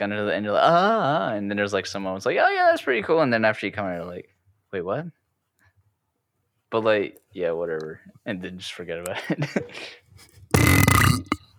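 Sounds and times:
speech: 0:00.0 - 0:05.2, 0:06.7 - 0:11.3
loud burp: 0:10.5 - 0:11.5.

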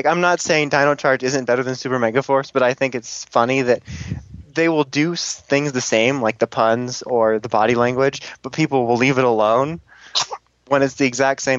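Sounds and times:
conversational speech: 0:00.0 - 0:11.5
person sneezing: 0:10.0 - 0:10.4.

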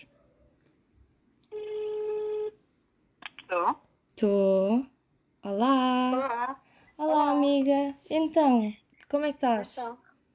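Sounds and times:
phone ringback tone beep over a speakerphone: 0:01.5 - 0:02.6
speech: 0:03.5 - 0:06.6, 0:07.4 - 0:10.0.

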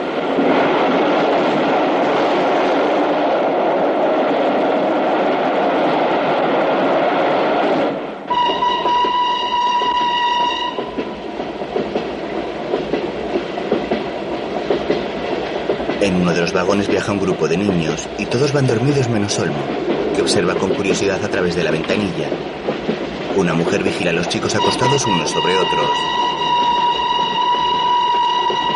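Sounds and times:
train running on tracks beside the sea: 0:00.0 - 0:28.7
sustained high train horn or whistle blast: 0:08.3 - 0:10.9, 0:24.7 - 0:28.7
speech: 0:17.0 - 0:22.7, 0:23.4 - 0:26.3.

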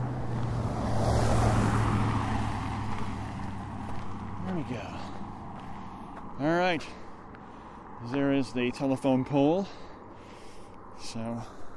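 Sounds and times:
truck driving past in the United States: 0:00.0 - 0:06.1
speech: 0:04.6 - 0:05.1, 0:06.4 - 0:07.0, 0:08.0 - 0:09.8, 0:11.0 - 0:11.6.

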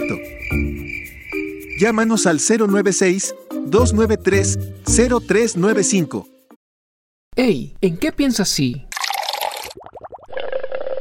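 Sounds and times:
speech: 0:01.8 - 0:06.4, 0:07.4 - 0:08.9
liquid pouring with a splashy rush: 0:08.9 - 0:10.9
steady fizzing pour: 0:08.9 - 0:10.9
gurgling bubble pops: 0:09.0 - 0:10.9.

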